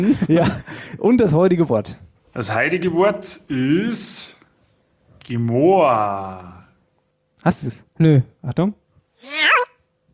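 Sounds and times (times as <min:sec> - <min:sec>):
speech: 0:00.0 - 0:04.4, 0:05.2 - 0:06.6, 0:07.4 - 0:09.5
cat meowing: 0:09.2 - 0:09.7.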